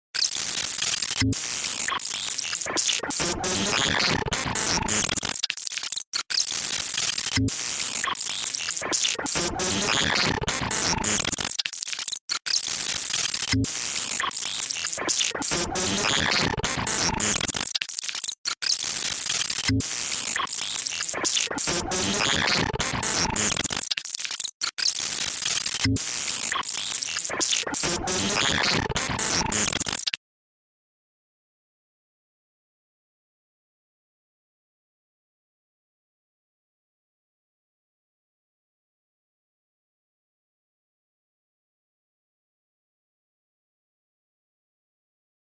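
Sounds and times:
computer glitch sound effect: 0.2 - 30.2.

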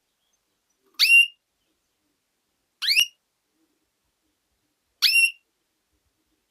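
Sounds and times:
female canary chip calls: 0.9 - 1.4, 2.8 - 3.2, 5.0 - 5.4.

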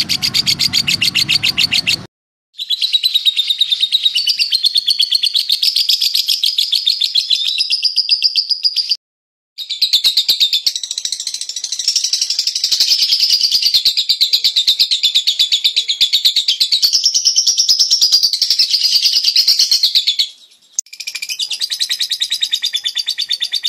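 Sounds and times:
lovebird chattering: 0.0 - 8.9, 9.7 - 23.6.

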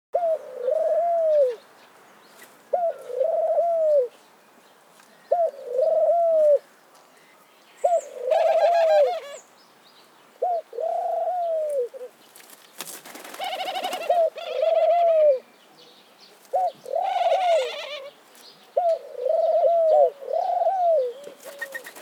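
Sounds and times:
dove low mellow coos: 0.2 - 1.6, 2.7 - 4.1, 5.3 - 6.6, 7.8 - 9.4, 10.4 - 12.2, 13.2 - 15.5, 16.5 - 18.2, 18.8 - 22.0.

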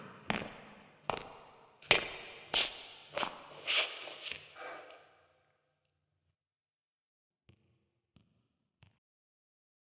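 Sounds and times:
human running footsteps approaching: 0.3 - 5.0.

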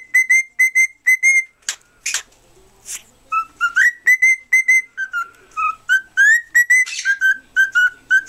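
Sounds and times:
cockatiel whistling song: 0.0 - 1.5, 3.3 - 8.2.

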